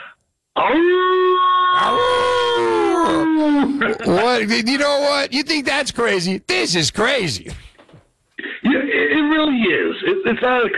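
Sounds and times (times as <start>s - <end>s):
wolf howling: 0.7s - 4.0s
speech: 3.8s - 7.6s, 9.0s - 10.7s.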